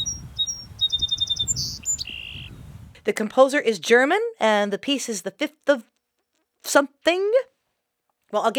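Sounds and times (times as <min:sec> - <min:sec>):
bird calling with high clear whistled notes and buzzy trill: 0:00.0 - 0:02.7
soft low outdoor rumble: 0:00.0 - 0:03.2
speech: 0:03.1 - 0:06.0, 0:06.7 - 0:07.5, 0:08.3 - 0:08.5.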